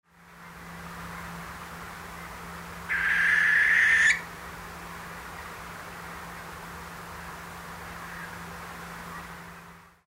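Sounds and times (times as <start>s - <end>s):
barn owl calling at night: 2.9s - 4.3s.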